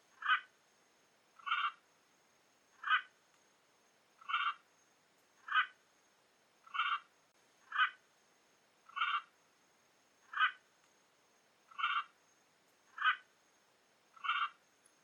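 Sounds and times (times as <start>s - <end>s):
Catalina macaw calling: 0.2s - 0.5s, 1.4s - 1.8s, 2.8s - 3.1s, 4.2s - 4.6s, 5.5s - 5.7s, 6.6s - 7.1s, 7.7s - 8.0s, 8.9s - 9.3s, 10.3s - 10.6s, 11.7s - 12.1s, 13.0s - 13.3s, 14.2s - 14.6s.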